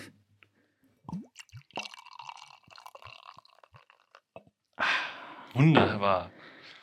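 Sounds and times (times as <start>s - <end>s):
small liquid plops: 1.0s - 4.6s
sipping and swallowing beer: 1.1s - 4.6s
speech: 5.5s - 6.4s.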